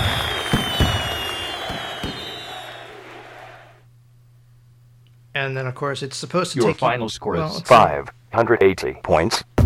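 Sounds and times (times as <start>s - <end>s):
fireworks exploding in a computer game's exit scene: 0.0s - 2.7s
speech: 5.4s - 9.6s.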